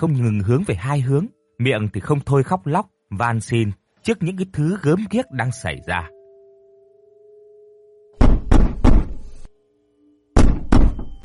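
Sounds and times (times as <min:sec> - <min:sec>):
speech: 0:00.0 - 0:06.2
faint steady hum: 0:00.0 - 0:08.2
pounding on a door: 0:08.2 - 0:09.2, 0:10.4 - 0:11.2.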